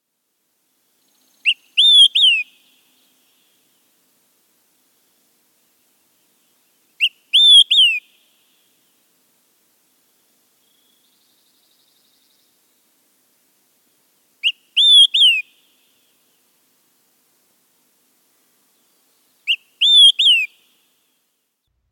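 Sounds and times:
olive-sided flycatcher whistled song: 1.4s - 2.8s, 7.0s - 8.1s, 14.4s - 15.6s, 19.4s - 20.6s.

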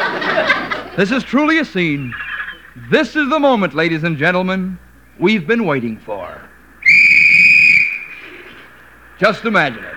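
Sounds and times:
laughter: 0.0s - 3.0s
speech: 1.0s - 2.2s, 2.8s - 6.4s, 9.2s - 9.9s
loud whistle blast on a white beach with skin divers gathered: 6.8s - 8.3s.

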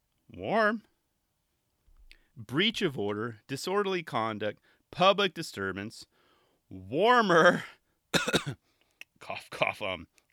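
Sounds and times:
speech: 0.3s - 0.9s, 2.4s - 6.1s, 6.7s - 8.6s, 9.2s - 10.2s
throat clearing: 8.2s - 8.6s.

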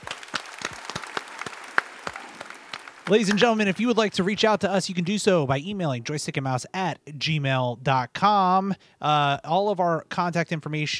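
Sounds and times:
small group clapping: 0.0s - 5.4s
speech: 3.1s - 10.9s.

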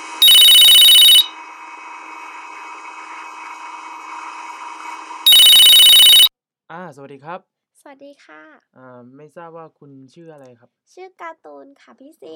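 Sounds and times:
telephone ringing for a caller phoning in to a radio show: 0.0s - 1.3s, 5.3s - 6.3s
steady low electronic tone: 0.2s - 1.3s
speech: 6.9s - 12.3s.

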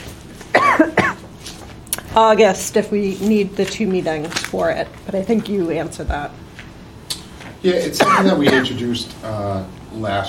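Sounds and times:
person coughing during a school committee meeting: 0.5s - 1.2s, 8.0s - 8.9s
speech: 2.2s - 6.4s, 7.6s - 10.2s.

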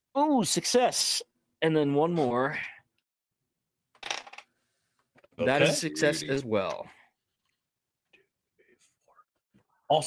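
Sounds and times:
speech: 0.3s - 2.8s, 5.4s - 7.0s
die tumbling across a hard surface: 4.0s - 4.5s.

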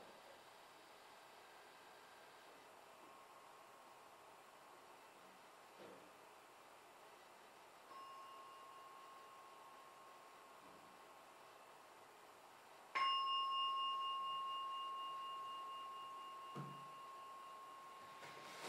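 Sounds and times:
meditation bell struck and ringing: 7.9s - 10.2s, 13.0s - 18.5s.

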